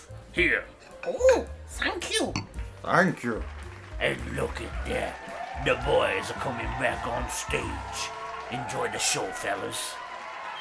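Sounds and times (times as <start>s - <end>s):
speech: 0.4s - 10.0s
drink splashing: 2.3s - 2.8s.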